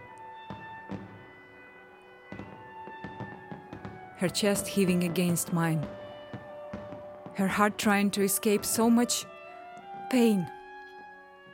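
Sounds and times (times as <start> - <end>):
fireworks bangs: 0.0 - 10.0
speech: 4.2 - 6.0, 7.4 - 9.3, 10.1 - 10.6.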